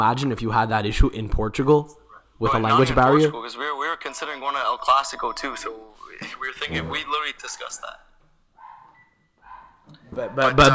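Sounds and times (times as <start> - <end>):
speech: 0.0 - 8.1, 10.2 - 10.7
dog barking: 8.6 - 10.7.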